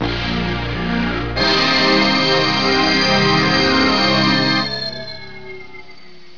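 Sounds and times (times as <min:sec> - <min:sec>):
horror organ music: 0:00.0 - 0:06.3.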